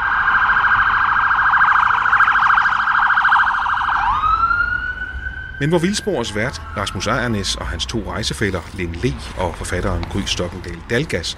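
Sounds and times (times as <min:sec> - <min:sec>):
loud emergency siren wailing in a warbling yelp: 0:00.0 - 0:09.0
faint rumble of city traffic: 0:00.0 - 0:11.3
speech: 0:05.6 - 0:11.3.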